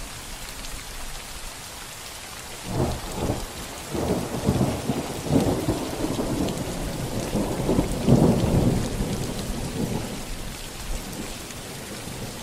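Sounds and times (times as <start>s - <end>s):
gentle rain: 0.0s - 12.4s
low rolling thunder: 2.7s - 11.2s.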